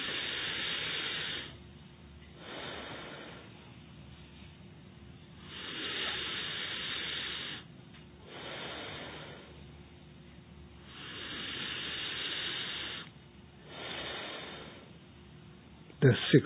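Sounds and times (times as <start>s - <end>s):
slow breathing in and out through the nostrils during a guided breathing exercise: 0.0s - 1.6s, 2.4s - 3.6s, 5.4s - 9.6s, 10.8s - 15.0s
speech: 16.0s - 16.4s.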